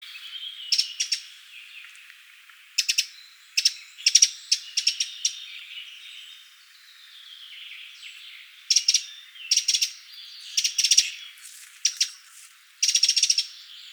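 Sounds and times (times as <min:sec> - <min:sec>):
Eurasian wren Troglodytes troglodytes calls: 0:00.1 - 0:01.9, 0:02.7 - 0:13.9.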